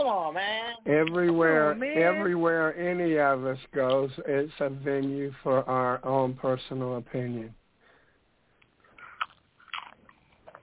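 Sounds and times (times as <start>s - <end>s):
speech: 0.1s - 7.6s
person chewing loudly: 9.0s - 10.6s.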